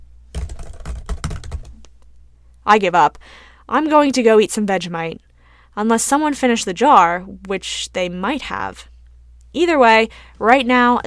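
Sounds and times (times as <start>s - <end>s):
computer keyboard mashed heavily: 0.3s - 2.0s
speech: 2.6s - 8.9s, 9.5s - 11.0s.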